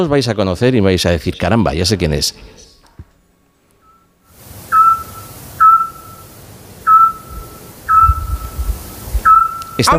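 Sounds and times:
speech: 0.0 - 2.6, 9.8 - 9.9
soft hiss of night-time noise: 0.1 - 9.9
scops owl whistling in Peñaranda de Duero town centre: 4.7 - 9.9.

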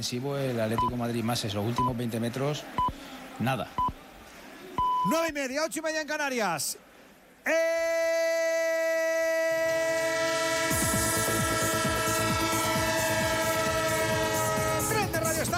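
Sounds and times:
speech: 0.0 - 3.9, 5.0 - 6.8, 7.4 - 8.3
train horn: 9.5 - 15.5.

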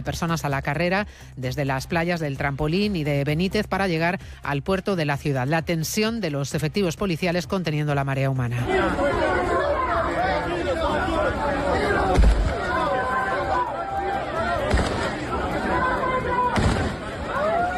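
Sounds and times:
speech: 0.0 - 9.5
loud continuous chatter of a large crowd rushing from the beaches to the port: 8.6 - 17.7
sharp gunshots fired into the air: 14.6 - 15.2, 16.6 - 17.2.

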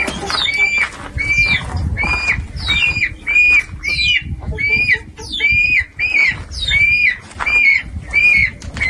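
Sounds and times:
birds and chickens calling during eclipse totality: 0.0 - 8.8.

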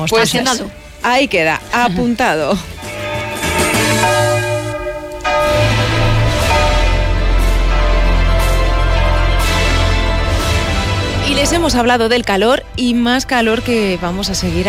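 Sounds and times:
speech: 0.0 - 2.7, 11.4 - 14.6
church bells pealing: 0.0 - 11.6.

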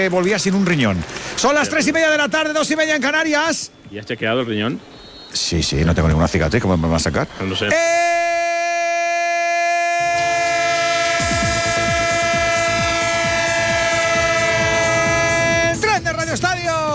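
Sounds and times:
speech: 0.0 - 8.1
multi-tone train horn blaring: 7.7 - 16.0.

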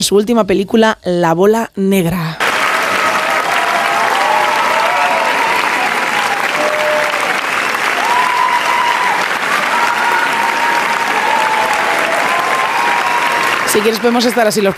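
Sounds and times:
speech: 0.0 - 2.4, 13.8 - 14.7
faint audience cheers: 2.4 - 14.2
large audience applauding: 2.4 - 14.7.

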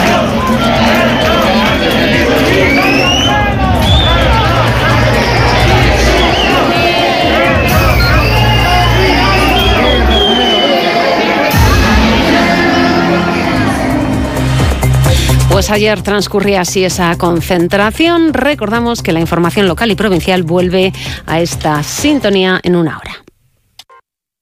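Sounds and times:
large crowd of protesters shouting and chanting in a plaza: 0.0 - 15.1
speech: 15.7 - 23.2.

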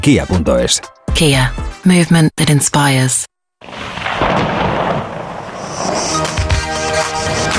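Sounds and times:
speech: 0.0 - 3.8
rolling thunder storm sound effect: 3.6 - 6.1
crackling hissing wash over thunder: 3.7 - 7.2.

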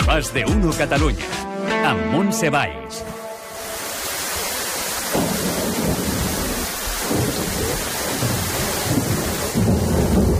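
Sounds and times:
speech: 0.2 - 3.2
heavy rain pouring: 3.4 - 10.3
deep rolls of thunder rumbling: 5.0 - 10.3.

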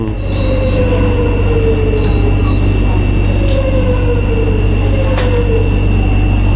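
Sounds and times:
modern metro train doors closing and opening: 0.0 - 6.5
short falling high-pitched tonal squeals: 0.0 - 6.5.

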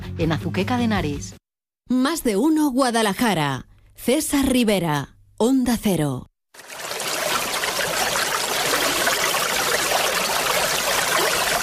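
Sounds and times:
speech: 0.2 - 6.8
flowing water: 6.6 - 11.6.

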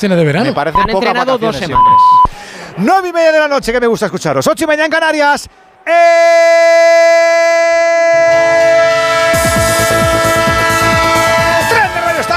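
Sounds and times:
speech: 0.0 - 8.9
horn-like whistle tone in a train sound-effect jingle for a radio sports program: 8.2 - 12.3.

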